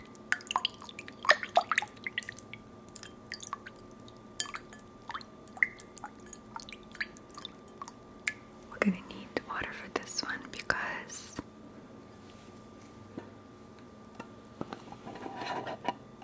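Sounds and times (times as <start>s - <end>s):
water dripping and plinking: 0.0s - 8.5s
faint steady hum: 0.0s - 16.2s.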